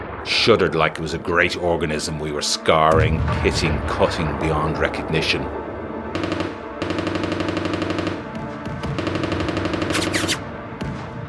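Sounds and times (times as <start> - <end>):
speech: 0.2 - 5.7
machine gun firing from farmhouse ruins on a battlefield: 6.2 - 10.5.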